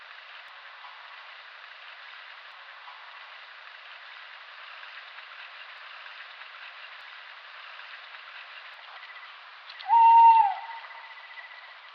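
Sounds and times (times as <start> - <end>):
soft background hiss: 0.0 - 11.9
tawny owl Strix aluco whistled hoot: 9.8 - 11.7.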